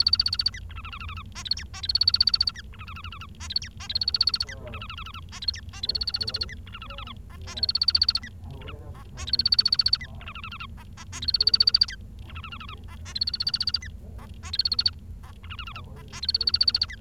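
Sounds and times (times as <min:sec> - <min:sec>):
Bengalese finch singing buzzy chattering notes: 0:00.0 - 0:16.9
low steady hum: 0:00.0 - 0:16.9.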